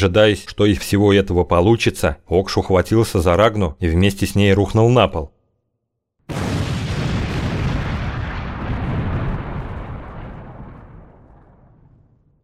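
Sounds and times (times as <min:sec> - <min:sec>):
speech: 0:00.0 - 0:05.4
powerful explosion in a torch-lit hall with stone columns: 0:06.3 - 0:12.4.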